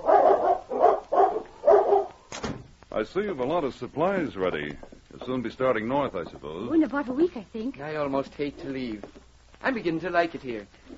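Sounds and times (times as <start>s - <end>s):
large dogs barking: 0.0s - 2.2s
speech: 3.0s - 10.8s.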